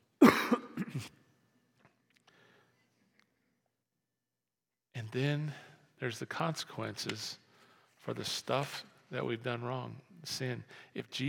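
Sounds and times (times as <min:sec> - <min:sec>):
person coughing harshly and clearing throat: 0:00.2 - 0:01.2
speech: 0:01.0 - 0:01.2, 0:05.1 - 0:07.4, 0:08.0 - 0:11.2.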